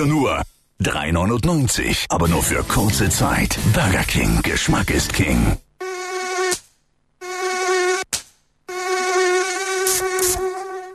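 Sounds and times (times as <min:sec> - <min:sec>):
speech: 0:00.0 - 0:05.6
high-pitched mosquito whine: 0:05.8 - 0:06.6, 0:07.2 - 0:08.1, 0:08.7 - 0:10.9.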